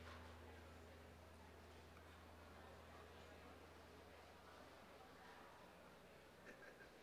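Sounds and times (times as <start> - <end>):
airport ambience while packing up at San Francisco International Airport: 0.0 - 6.9.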